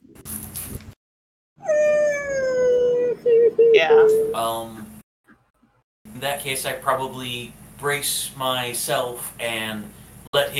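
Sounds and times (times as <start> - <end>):
rustling noise: 0.0 - 1.0
dog howling: 1.6 - 4.4
speech: 3.8 - 4.8, 6.2 - 10.5.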